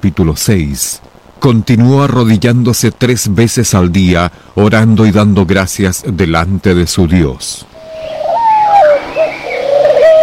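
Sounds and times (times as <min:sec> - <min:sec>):
speech: 0:00.0 - 0:08.2
pigeon cooing: 0:07.8 - 0:10.2.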